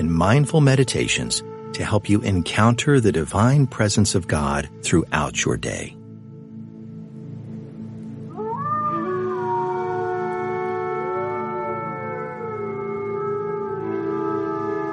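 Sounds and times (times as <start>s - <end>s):
speech: 0.2s - 6.0s
distant pack of wolves howling: 8.2s - 14.9s.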